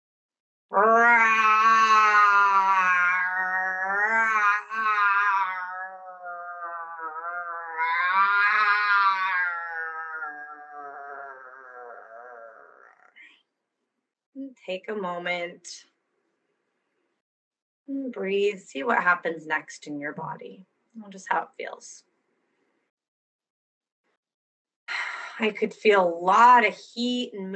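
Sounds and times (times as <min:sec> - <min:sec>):
speech: 0:00.7 - 0:01.8, 0:14.7 - 0:15.9, 0:17.9 - 0:22.1, 0:25.4 - 0:27.5
person roaring in a gravelly vocal blast: 0:00.9 - 0:13.1.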